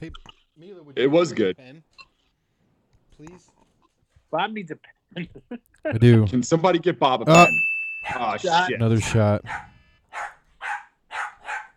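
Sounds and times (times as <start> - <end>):
speech: 0.0 - 2.1, 3.2 - 3.6, 4.3 - 10.3
dog barking sharply: 9.4 - 11.7.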